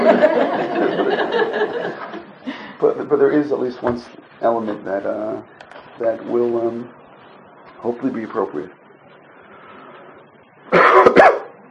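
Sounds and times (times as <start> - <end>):
laughter: 0.0 - 2.8
speech: 3.1 - 7.0, 7.8 - 8.8, 10.7 - 11.4
harsh throaty coughs: 10.7 - 11.5.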